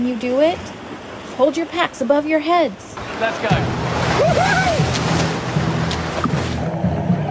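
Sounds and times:
speech: 0.0 - 0.8, 1.4 - 4.6
strong ocean waves rushing: 0.0 - 7.2
shout or call: 4.1 - 4.9.

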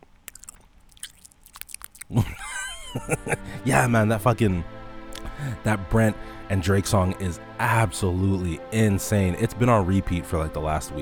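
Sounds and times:
chewing and biting food with wet crunches and smacks: 0.0 - 3.3
laughter: 2.1 - 4.3
speech: 3.0 - 4.7, 5.4 - 11.0.

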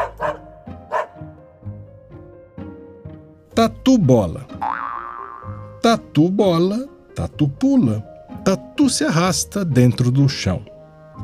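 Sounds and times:
short-eared dog barking: 0.0 - 1.2
speech: 3.6 - 4.7, 5.9 - 10.7.

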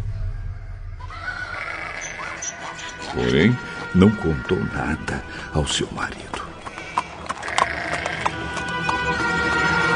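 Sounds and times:
low rumbling: 0.0 - 2.0
laden donkey braying: 1.1 - 9.9
speech: 2.5 - 6.4
faint shuffling of donkey hooves: 5.6 - 9.3.

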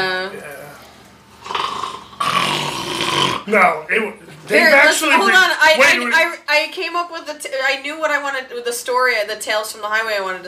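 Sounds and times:
person imitating snoring: 1.4 - 3.5
speech: 3.5 - 10.4.

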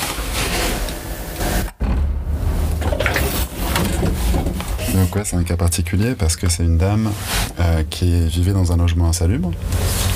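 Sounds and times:
door closing with a long rumbling scrape: 0.3 - 5.3
speech: 5.2 - 10.1.

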